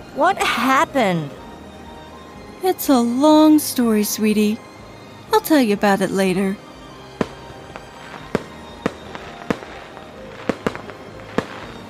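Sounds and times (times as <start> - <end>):
speech: 0.2 - 1.4, 2.6 - 4.7, 5.4 - 6.6
fireworks popping and cracking in sharp bursts: 7.2 - 11.8.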